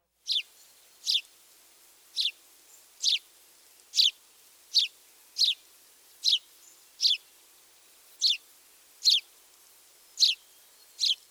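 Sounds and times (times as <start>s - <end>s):
house sparrow singing: 0.3s - 1.3s, 2.2s - 2.4s, 3.0s - 3.2s, 3.9s - 7.3s, 8.2s - 8.4s, 9.0s - 9.3s, 10.2s - 11.2s.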